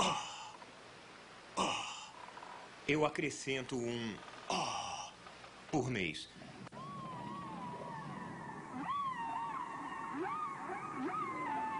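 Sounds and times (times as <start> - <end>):
speech: 2.9 - 4.8, 5.7 - 6.4
humpback whale song: 6.7 - 11.7.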